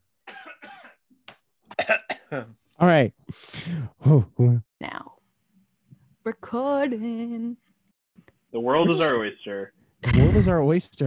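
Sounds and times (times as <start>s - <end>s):
raspy coughs: 0.3s - 1.0s, 1.7s - 2.5s, 8.9s - 9.2s
speech: 2.3s - 5.0s, 6.4s - 7.6s, 8.6s - 11.0s.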